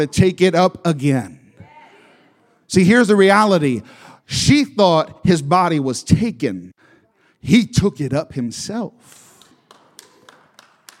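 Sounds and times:
speech: 0.0s - 1.4s, 2.7s - 6.8s, 7.4s - 9.2s
faint hand claps during an Easter sermon: 9.0s - 10.9s.

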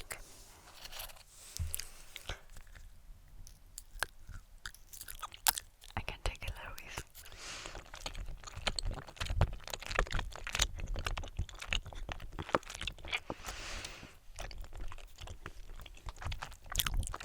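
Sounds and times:
crisp crunching and chewing of German snacks: 0.0s - 17.2s.

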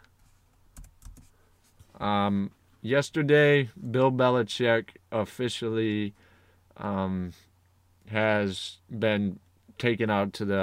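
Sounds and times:
typing on a computer keyboard: 0.8s - 1.3s
speech: 2.0s - 7.5s, 8.1s - 10.6s.

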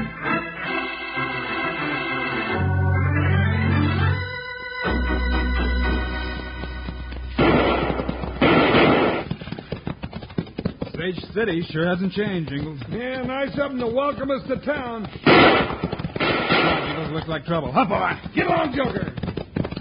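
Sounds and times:
loud dramatic music with heavy low tones: 0.0s - 8.7s
gunfire from six-guns in a western town: 7.3s - 9.3s, 15.2s - 17.2s
speech: 11.1s - 16.0s, 16.7s - 19.2s.

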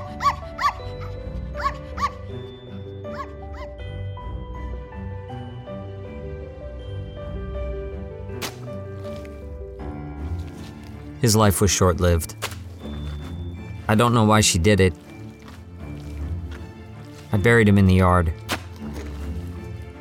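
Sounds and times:
puppy yipping and barking: 0.0s - 2.3s, 3.1s - 3.8s
soft sustained music: 0.0s - 19.9s
speech: 11.2s - 12.5s, 13.9s - 15.0s, 17.4s - 18.4s.

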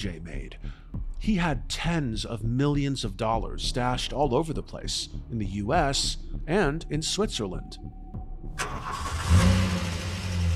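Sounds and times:
speech: 0.0s - 8.0s
car engine rumbling inside a moving vehicle: 8.5s - 10.5s
road noise: 8.6s - 10.5s.

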